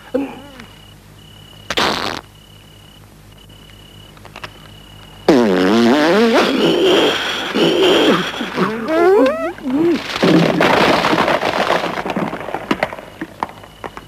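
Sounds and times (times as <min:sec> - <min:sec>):
farting in a film dubbed in Spanish: 0:01.7 - 0:02.3, 0:05.3 - 0:12.3.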